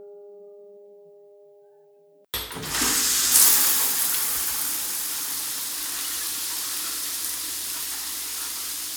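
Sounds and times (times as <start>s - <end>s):
water running from a tap: 2.4s - 8.9s.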